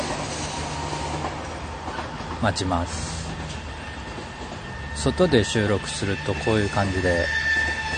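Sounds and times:
train rumbling on rails: 0.0 - 7.9
speech: 2.4 - 3.2, 5.0 - 7.6.

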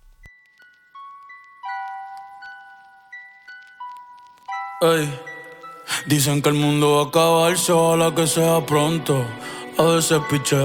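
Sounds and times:
bell-like chime melody of a song intro: 0.3 - 8.7
speech: 4.8 - 5.3, 6.0 - 10.6.

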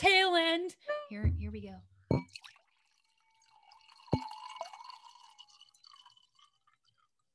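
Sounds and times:
speech: 1.1 - 2.4
last drips of liquid poured from a bottle: 2.2 - 7.3.

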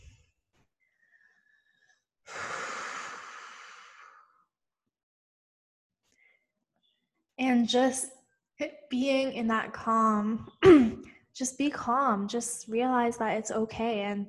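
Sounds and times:
deep breath in: 1.0 - 4.4
speech: 7.4 - 14.2.

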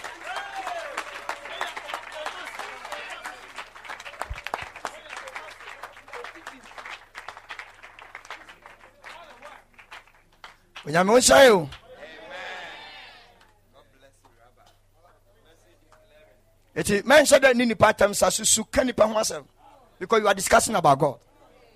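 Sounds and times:
church congregation clapping their hands during a service: 0.0 - 11.9
speech: 10.8 - 11.8, 16.8 - 21.3.

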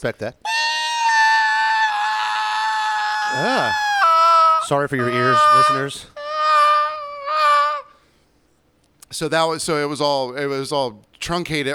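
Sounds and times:
speech: 0.0 - 0.6, 3.3 - 3.8, 4.7 - 6.2, 9.1 - 11.7
person imitating a football play screech: 0.4 - 8.0.

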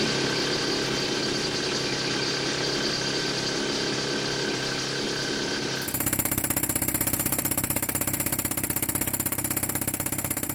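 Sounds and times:
steady mechanical drone with constant hum: 0.0 - 7.9
loud rapid pneumatic hammering of mining jackhammer or rock drill: 5.8 - 10.5.

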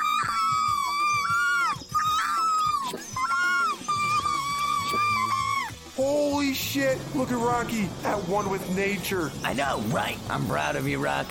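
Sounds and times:
chorus of thin high-pitched screams: 0.0 - 5.8
speech: 6.5 - 11.3.

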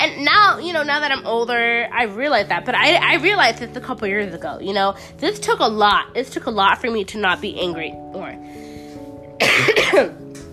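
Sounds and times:
speech: 0.0 - 8.7, 9.5 - 10.2
sick person clearing throat: 9.4 - 10.2
sick person coughing: 9.4 - 10.2.

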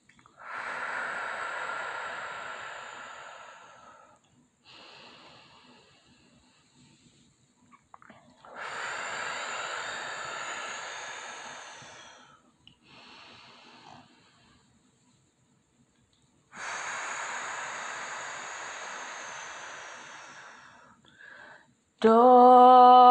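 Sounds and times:
slow deep breathing during a guided breathing exercise: 0.4 - 7.3, 8.4 - 14.8, 16.5 - 21.7
speech: 22.0 - 22.8.

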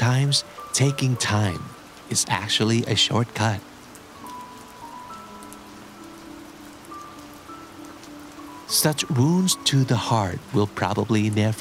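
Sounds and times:
steady rain: 0.0 - 11.5
speech: 0.3 - 3.7, 8.7 - 11.5.

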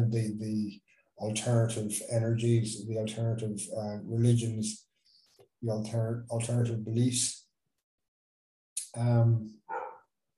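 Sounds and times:
speech: 0.0 - 4.9, 5.6 - 7.4, 8.9 - 9.8
dog barking: 9.7 - 10.1.

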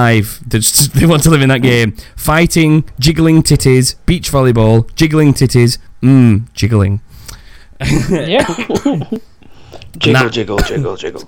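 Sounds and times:
speech: 0.0 - 7.1, 7.8 - 9.3, 9.9 - 11.2
person coughing raspily: 7.8 - 9.2.

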